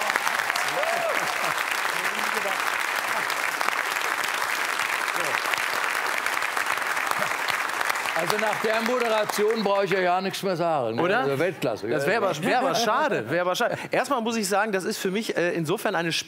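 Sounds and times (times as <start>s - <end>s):
cheers: 0.0s - 9.8s
loud sustained applause from a large audience: 0.0s - 10.1s
speech: 8.2s - 16.2s.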